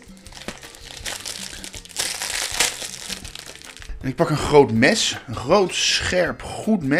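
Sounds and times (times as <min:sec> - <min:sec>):
plastic stroopwafel packaging crinkling as a stroopwafel is pulled out: 0:00.0 - 0:04.0
speech: 0:04.0 - 0:06.9.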